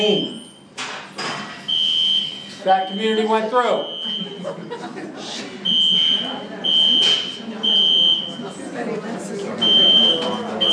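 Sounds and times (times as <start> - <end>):
speech: 0.0 - 0.4, 2.6 - 5.6
shrill electronic alarm beeping: 1.7 - 4.4, 5.6 - 8.4, 9.6 - 10.7
people talking and chuckling: 3.3 - 10.7.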